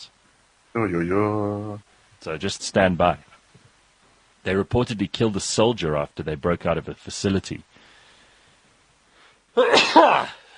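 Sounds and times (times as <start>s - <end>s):
speech: 0.7s - 3.3s, 4.4s - 7.7s, 9.6s - 10.4s
faint intake of breath: 7.7s - 9.5s
loud sneeze: 9.6s - 10.5s.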